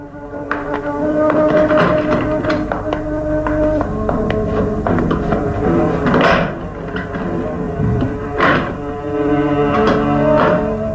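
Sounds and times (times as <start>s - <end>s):
sustained musical tones: 0.0s - 10.9s
footsteps walking across a hard floor toward a door: 0.3s - 8.9s.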